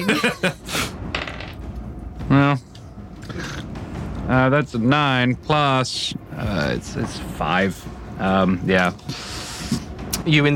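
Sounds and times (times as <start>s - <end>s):
laughter: 0.0s - 0.9s
dice clattering across a hard tabletop: 1.1s - 1.6s
speech: 2.3s - 2.7s, 4.3s - 9.3s, 10.3s - 10.5s.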